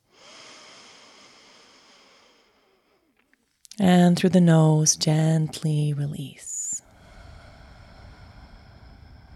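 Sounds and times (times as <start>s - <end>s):
long full breath drawn in through the nose: 0.0s - 3.2s, 6.8s - 9.3s
speech: 3.8s - 6.5s.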